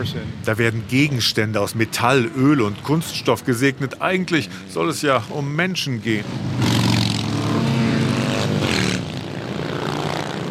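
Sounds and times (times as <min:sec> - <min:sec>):
speech: 0:00.0 - 0:06.6
motorcycle engines roaring in a parade: 0:00.0 - 0:10.4.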